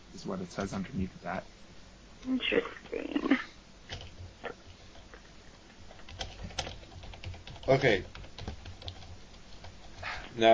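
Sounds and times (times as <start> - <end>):
low hiss: 0.0 - 10.5
speech: 0.2 - 3.4, 7.7 - 8.2, 10.4 - 10.5
typing on a computer keyboard: 6.0 - 10.0.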